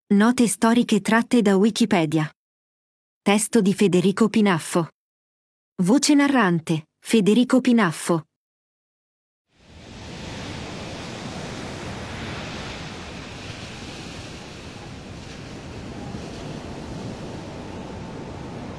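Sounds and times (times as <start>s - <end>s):
speech: 0.1s - 2.4s, 3.2s - 5.0s, 5.8s - 8.3s
high rough sea waves crashing: 9.6s - 18.7s.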